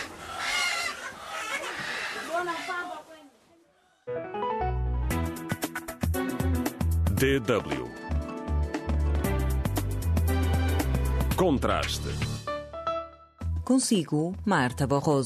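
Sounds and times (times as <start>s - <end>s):
cluster of chickens clucking and squawking: 0.0s - 3.1s
loud instrumental music passage: 5.0s - 13.5s
speech: 7.2s - 7.9s, 11.4s - 12.3s, 13.7s - 15.2s.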